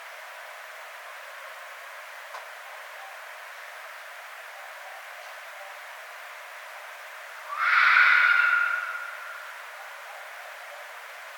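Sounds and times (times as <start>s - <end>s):
Red fox hoarse wailing cry: 7.5s - 9.6s.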